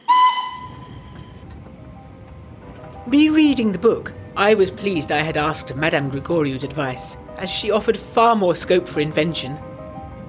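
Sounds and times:
steam train whistle: 0:00.0 - 0:01.4
branch-line steam train huffing into a station: 0:00.0 - 0:04.8
speech: 0:03.1 - 0:09.7.

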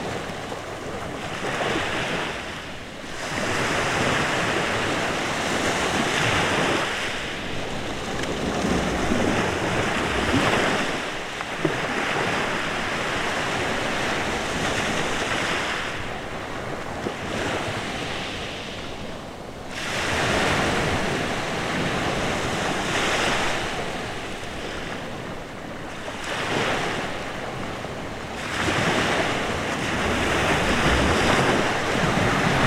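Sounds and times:
waves rolling in on a deserted beach at night in Sirolo Italy: 0:00.0 - 0:32.6
wind rumbling low against the microphone: 0:00.0 - 0:32.6.

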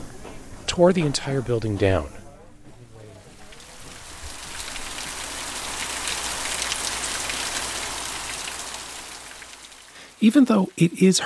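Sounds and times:
speech: 0:00.8 - 0:02.2, 0:10.2 - 0:11.2
rain downpour pattering on surfaces on a tobacco farm during hurricane season: 0:03.0 - 0:11.2.

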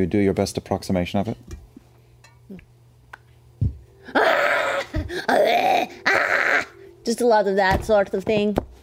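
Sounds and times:
speech: 0:00.0 - 0:01.6, 0:07.1 - 0:08.6
person imitating anguished tortured screaming: 0:04.0 - 0:06.8.

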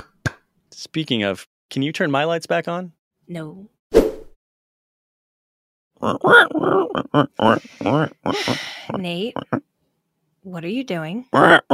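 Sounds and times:
speech: 0:00.8 - 0:04.1, 0:06.0 - 0:09.7, 0:10.4 - 0:11.7
person imitating pig oinking and grunting: 0:06.0 - 0:09.7, 0:11.3 - 0:11.7.

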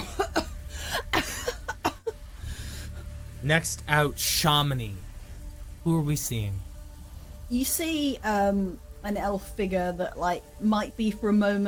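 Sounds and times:
young girl coughing and sputtering after running out of a blaze: 0:00.0 - 0:02.1
low hum: 0:00.0 - 0:11.6
speech: 0:03.4 - 0:05.1, 0:05.8 - 0:06.7, 0:07.5 - 0:11.6.

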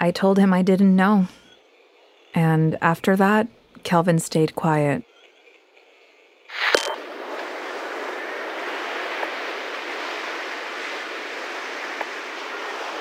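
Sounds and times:
speech: 0:00.0 - 0:01.4, 0:02.3 - 0:05.1
loud beach surf: 0:06.5 - 0:12.9.

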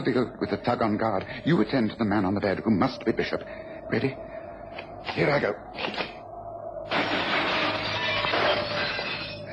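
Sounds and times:
speech: 0:00.0 - 0:06.1
glass skylight shattering as a person jumps through: 0:06.9 - 0:09.4.

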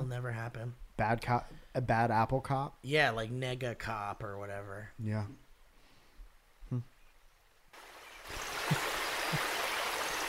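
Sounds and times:
speech: 0:00.1 - 0:05.4, 0:06.7 - 0:06.9
short voice sounds: 0:06.6 - 0:06.9
rushing stream water: 0:07.8 - 0:10.2.

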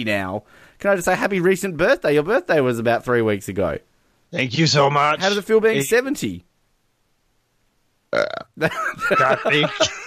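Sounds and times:
speech: 0:00.0 - 0:06.5, 0:08.1 - 0:10.0
soft burp: 0:08.1 - 0:08.6
laughter: 0:08.6 - 0:10.0.

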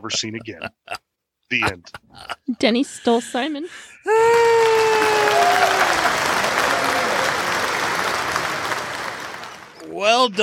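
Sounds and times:
laughter: 0:00.0 - 0:03.5
speech: 0:00.0 - 0:06.3, 0:10.0 - 0:10.4
descending cheer or whistle: 0:04.1 - 0:09.8
audience applause: 0:04.2 - 0:10.4.

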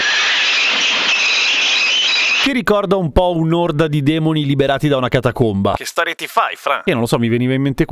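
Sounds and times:
subway train steel wheels screeching on rails: 0:00.0 - 0:02.5
speech: 0:02.4 - 0:07.9.

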